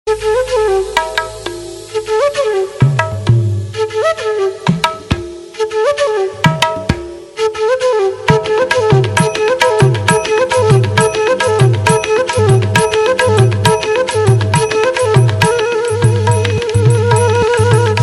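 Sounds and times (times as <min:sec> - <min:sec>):
flute: 0:00.1 - 0:18.0
tabla: 0:00.1 - 0:18.0.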